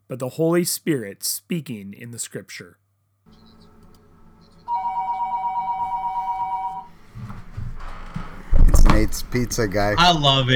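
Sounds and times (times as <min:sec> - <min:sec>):
speech: 0:00.1 - 0:02.8, 0:09.0 - 0:10.5
phone ringtone ringing: 0:04.4 - 0:06.9.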